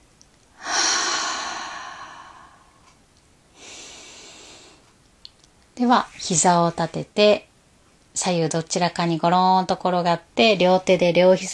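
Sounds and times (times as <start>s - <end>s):
deep breath in a bedtime yoga relaxation session: 0.6s - 4.9s
speech: 5.8s - 7.5s, 8.2s - 11.5s.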